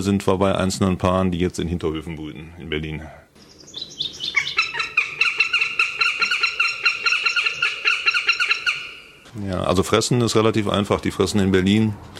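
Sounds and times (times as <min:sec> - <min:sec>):
speech: 0:00.0 - 0:03.2, 0:09.4 - 0:12.1
northern goshawk chattering call: 0:03.4 - 0:09.2.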